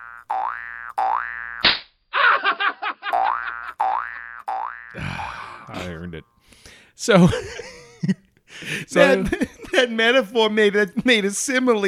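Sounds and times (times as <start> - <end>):
cartoon springy wobbling boings: 0.0 - 1.8, 3.2 - 5.0
cartoon slap smack: 1.6 - 1.9
speech: 5.7 - 8.2, 8.9 - 11.8.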